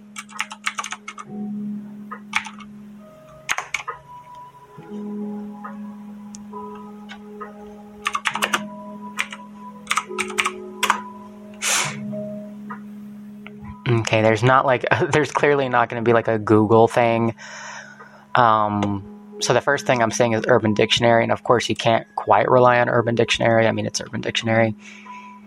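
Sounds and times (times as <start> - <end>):
steady low electrical hum: 0.0 - 25.4
computer keyboard typing: 0.1 - 1.3, 2.2 - 2.7, 3.4 - 4.0, 8.0 - 11.1
speech: 14.1 - 17.7, 18.4 - 25.1.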